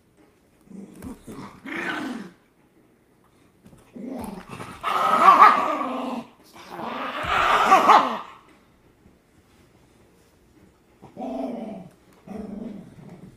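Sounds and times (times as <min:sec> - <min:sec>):
several dogs barking and growling: 0:00.6 - 0:02.5, 0:03.9 - 0:08.5, 0:11.0 - 0:13.3.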